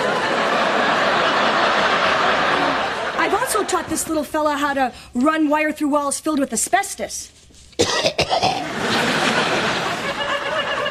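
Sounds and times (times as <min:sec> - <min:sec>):
laughter: 0:00.0 - 0:04.2, 0:08.6 - 0:10.8
speech: 0:03.9 - 0:09.3
harsh coughs: 0:07.8 - 0:08.7.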